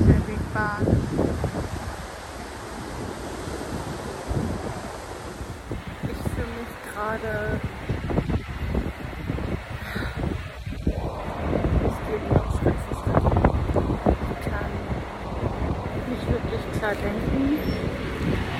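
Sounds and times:
gusty wind buffeting the microphone: 0.0s - 18.5s
waves washing in: 0.0s - 18.5s
speech: 16.9s - 17.3s.

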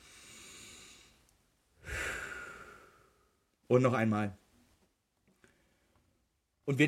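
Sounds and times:
deep inhale during a breathing exercise: 0.0s - 1.2s, 1.8s - 3.5s
rushing exhale during a breathing exercise: 0.0s - 1.2s, 1.8s - 3.4s
speech: 3.7s - 4.4s, 6.7s - 6.8s.

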